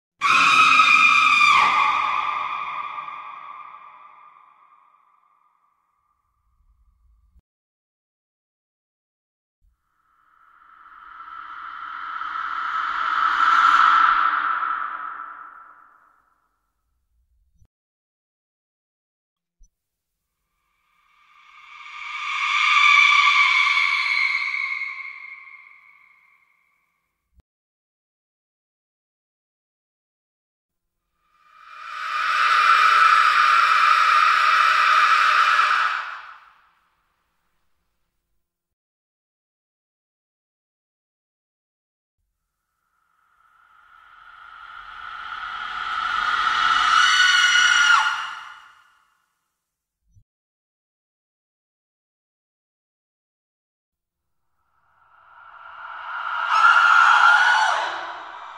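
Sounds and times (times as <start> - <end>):
creepy horror sounds: 0.2 - 5.4, 10.2 - 16.1, 21.0 - 26.5, 31.4 - 36.4, 43.5 - 48.8, 54.9 - 58.5.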